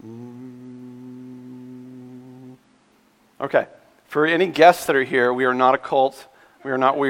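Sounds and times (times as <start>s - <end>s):
audience humming one low steady note together: 0.0s - 2.6s
speech: 3.4s - 7.0s.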